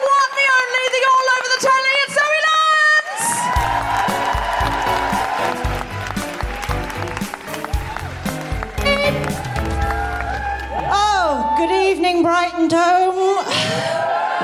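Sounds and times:
live audience applauding and cheering: 0.0 - 14.4
loud walk-on music with a pounding beat: 3.6 - 10.6.

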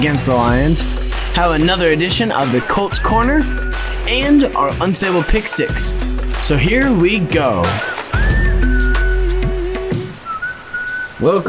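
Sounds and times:
speech: 0.0 - 8.4, 11.2 - 11.4
steady rain on a tin roof in a backyard: 7.6 - 11.4
thin sustained whistling tone: 7.8 - 11.2.

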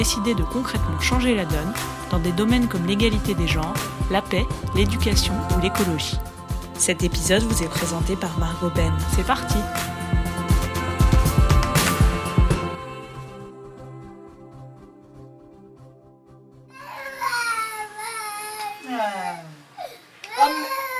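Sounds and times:
speech: 0.0 - 10.0
music: 0.0 - 17.6
baby crying and wailing: 16.7 - 20.9.

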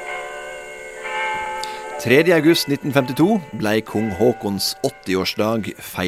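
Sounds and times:
city hall carillon bells playing: 0.0 - 6.0
speech: 2.0 - 6.0.

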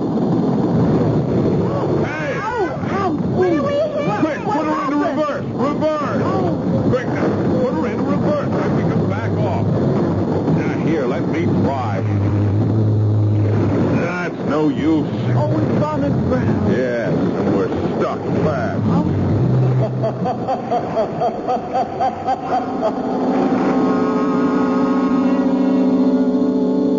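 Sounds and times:
boat engine running at low throttle: 0.0 - 26.9
people talking: 1.6 - 9.7, 10.5 - 12.2, 13.9 - 19.2, 24.4 - 26.4
laughter: 19.6 - 25.4.

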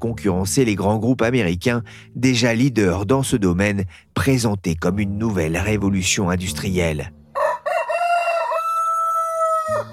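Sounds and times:
speech: 0.0 - 7.2
rooster crowing: 7.3 - 9.9.

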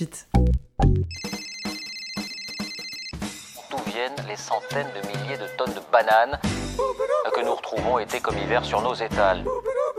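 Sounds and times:
speech: 0.0 - 0.6, 4.0 - 9.8
theme jingle with telephone ringtone: 1.1 - 3.7.

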